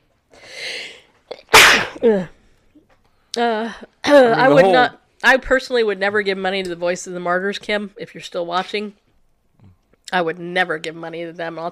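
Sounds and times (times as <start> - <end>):
person sneezing loudly: 1.3 - 2.4
speech: 2.0 - 2.4, 3.4 - 9.0, 10.1 - 11.7.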